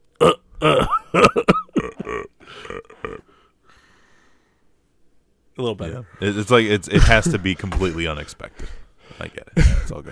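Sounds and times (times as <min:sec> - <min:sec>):
person burping: 0:00.2 - 0:03.3
speech: 0:00.6 - 0:01.6, 0:05.6 - 0:10.1.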